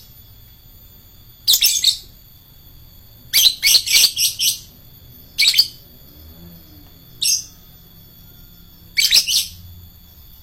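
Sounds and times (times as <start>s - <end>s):
adult lovebird chittering: 1.4s - 2.2s, 3.3s - 6.0s, 7.1s - 7.7s, 8.9s - 9.7s.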